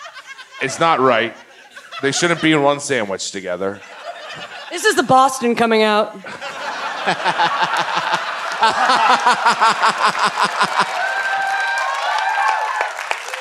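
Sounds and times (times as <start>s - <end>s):
live audience laughter: 0.0s - 2.7s, 3.8s - 5.1s, 6.2s - 11.2s
speech: 0.6s - 1.4s, 2.0s - 11.0s
live audience applause: 6.5s - 13.4s.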